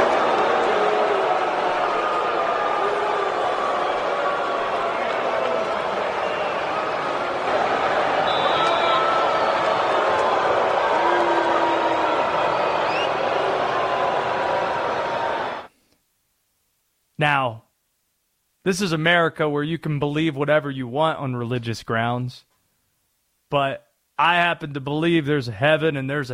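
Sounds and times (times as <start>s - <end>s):
huge stadium crowd booing loudly: 0.0s - 15.7s
speech: 17.2s - 17.6s, 18.6s - 22.5s, 23.5s - 26.3s.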